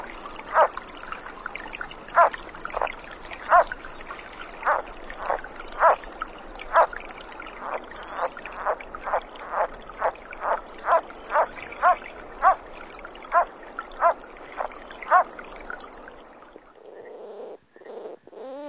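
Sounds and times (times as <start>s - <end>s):
Sierra Nevada yellow-legged frog Rana sierrei calling: 0.5s - 0.8s, 2.1s - 3.8s, 4.6s - 6.0s, 6.6s - 6.9s, 7.6s - 12.6s, 13.3s - 15.3s.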